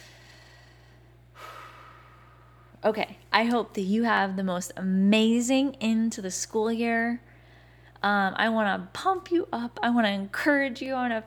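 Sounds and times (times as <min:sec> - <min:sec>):
deep breath drawn in: 0:00.0 - 0:02.8, 0:07.3 - 0:08.0
steady low hum: 0:00.0 - 0:11.2
speech: 0:02.8 - 0:07.3, 0:08.0 - 0:11.2.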